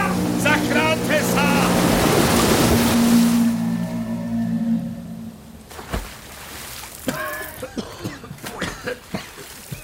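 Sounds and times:
huge wave of rushing black river water sweeping along trees and rocks: 0.0s - 9.8s
short squealing tonal cries: 2.8s - 5.6s.

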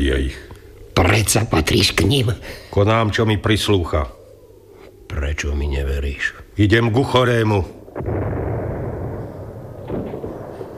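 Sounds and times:
speech: 0.0s - 4.2s, 5.1s - 8.4s
distant gunfire: 8.0s - 10.7s.

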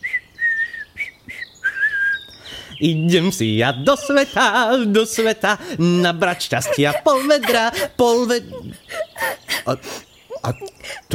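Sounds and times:
person whistling a cheerful little tune: 0.0s - 2.2s
speech: 2.8s - 11.1s
laughter: 3.9s - 11.1s.

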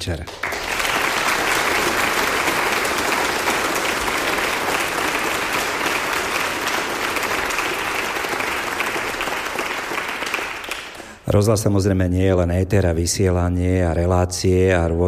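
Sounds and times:
speech: 0.0s - 0.5s, 11.3s - 15.0s
large audience applauding: 0.2s - 11.2s.

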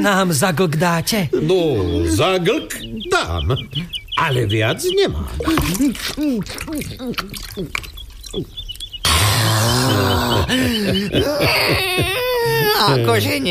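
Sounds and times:
speech: 0.0s - 8.6s, 9.4s - 13.4s
laughter: 1.1s - 7.4s, 9.6s - 13.4s
water pouring and overflowing from a barrel as a man fills it: 5.4s - 9.1s.

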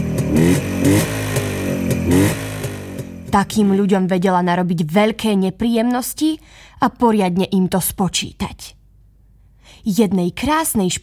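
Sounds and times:
motorcycle engine revving over rumbling idle: 0.0s - 3.8s
speech: 3.4s - 8.8s, 9.8s - 11.0s.

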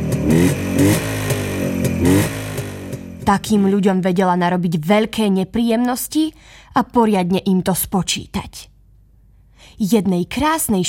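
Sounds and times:
motorcycle engine revving: 0.0s - 3.8s
speech: 3.3s - 8.7s, 9.8s - 10.8s.

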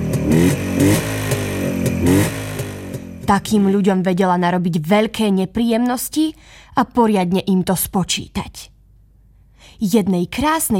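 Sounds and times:
motorcycle engine revving: 0.0s - 3.8s
speech: 3.3s - 8.7s, 9.6s - 10.7s.

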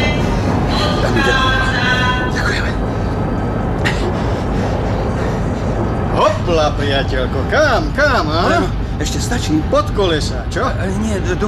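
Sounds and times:
train starting to move with low rumble and mechanical drone: 0.0s - 11.4s
speech: 6.8s - 11.4s.

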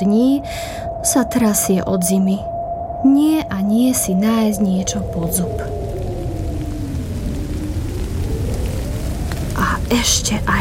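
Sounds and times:
speech: 0.0s - 5.8s, 9.9s - 10.5s
deep low rumble: 0.0s - 10.5s
steady rain: 4.4s - 10.5s.

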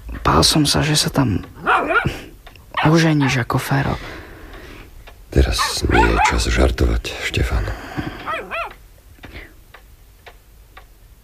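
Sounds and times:
clock-like ticking: 0.0s - 11.2s
speech: 0.3s - 2.2s, 2.8s - 4.2s, 5.3s - 7.8s
dog giving high yelping whimpers: 1.6s - 2.2s, 2.8s - 3.5s, 5.6s - 6.5s, 8.1s - 8.8s.

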